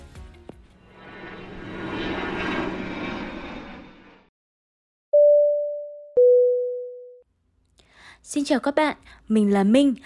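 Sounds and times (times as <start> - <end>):
airplane engine roar: 0.1 - 4.3
two-tone chime: 5.2 - 7.2
speech: 8.2 - 10.0.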